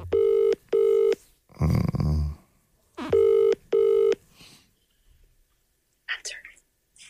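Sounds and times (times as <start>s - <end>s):
phone ringing tone over speakerphone: 0.0s - 1.2s, 3.0s - 4.2s.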